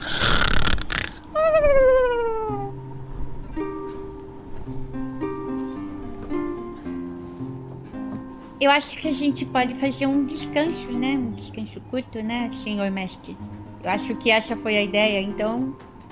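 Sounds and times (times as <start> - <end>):
voice imitating snoring with a snort and descending groan: 0.0 - 1.3
soft sustained humming tones: 1.3 - 16.1
speech: 8.6 - 15.9.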